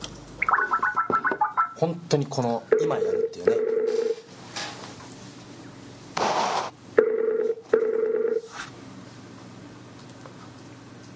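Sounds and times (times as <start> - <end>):
Skype outgoing call warbling electronic ringing tone: 0.4 - 1.8, 2.7 - 4.2, 7.0 - 8.5
speech: 1.8 - 4.1
shuffling noise: 8.4 - 9.2.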